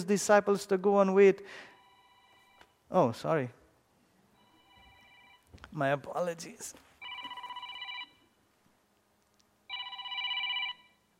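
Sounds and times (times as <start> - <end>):
speech: 0.0 - 1.7, 2.9 - 3.6, 5.7 - 6.8
telephone ringing with electronic trill: 1.8 - 2.7, 4.4 - 5.5, 7.0 - 8.4, 9.7 - 11.1.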